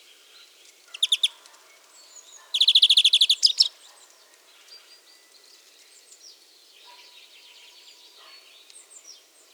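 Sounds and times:
European greenfinch Chloris chloris giving short rapid chirping trills: 0.9 - 1.3, 2.4 - 3.7.

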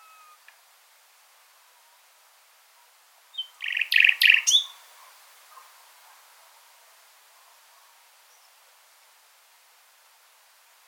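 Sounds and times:
common nightingale Luscinia megarhynchos song: 3.3 - 8.6.

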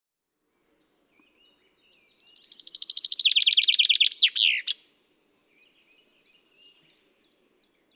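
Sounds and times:
common chaffinch Fringilla coelebs song: 0.6 - 7.9.

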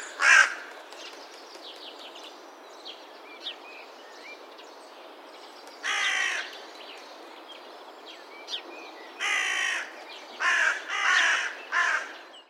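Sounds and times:
Carrion crow giving harsh hoarse caws: 0.0 - 0.7, 5.9 - 6.5, 9.2 - 12.2.

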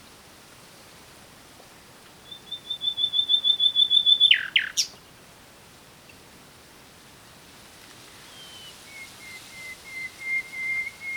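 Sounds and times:
soft hiss: 0.0 - 11.1
common nightingale Luscinia megarhynchos singing drawn-out high pure whistles: 2.2 - 5.0, 8.2 - 11.1.

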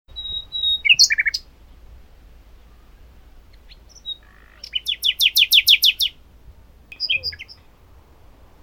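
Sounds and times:
common nightingale singing: 0.1 - 1.9, 2.5 - 6.2, 6.8 - 7.8.

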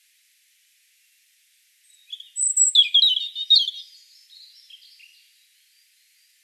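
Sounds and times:
European robin song: 1.9 - 5.8.

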